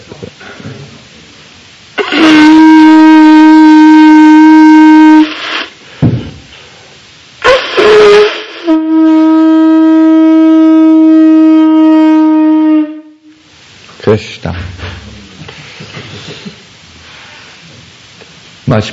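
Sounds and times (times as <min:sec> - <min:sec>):
conch shell blown: 0:02.0 - 0:05.8, 0:07.4 - 0:13.5
speech: 0:14.1 - 0:14.6, 0:18.7 - 0:18.9.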